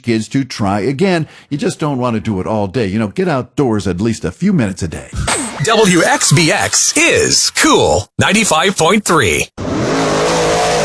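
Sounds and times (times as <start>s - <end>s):
speech: 0.0s - 9.6s
dirt track race car engines revving: 9.6s - 10.8s.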